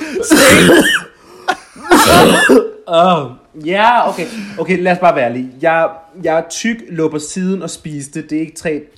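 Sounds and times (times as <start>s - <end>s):
harsh person coughing: 0.0s - 1.2s, 1.8s - 2.8s
speech: 0.1s - 1.1s, 2.5s - 8.9s.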